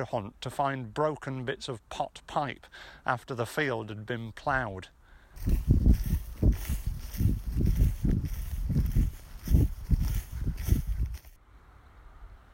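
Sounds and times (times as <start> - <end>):
speech: 0.0 - 5.8
footsteps swishing through grass in a field: 5.4 - 11.4.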